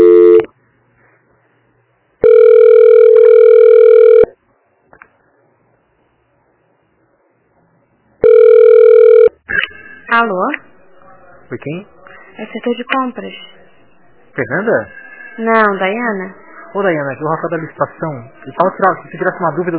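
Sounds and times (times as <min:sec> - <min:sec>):
telephone tone while a call is transferred: 0:00.0 - 0:00.5, 0:02.2 - 0:04.4, 0:08.2 - 0:09.4
speech: 0:10.2 - 0:10.6, 0:11.5 - 0:13.6, 0:14.4 - 0:19.7.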